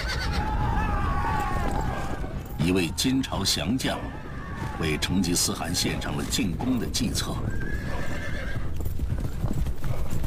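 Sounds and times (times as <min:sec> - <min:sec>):
horse whinny: 0:00.0 - 0:00.6, 0:07.4 - 0:08.7
many horses' hooves clattering in a mountain pass: 0:00.0 - 0:10.2
speech: 0:02.6 - 0:04.2, 0:04.8 - 0:07.8.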